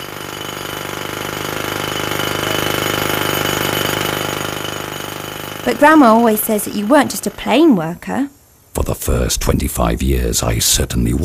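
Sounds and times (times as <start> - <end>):
jackhammer pounding stone: 0.0 - 7.9
speech: 5.7 - 11.2.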